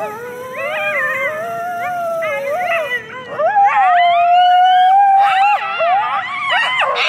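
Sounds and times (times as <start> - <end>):
coyote group yip howl: 0.0 - 7.0.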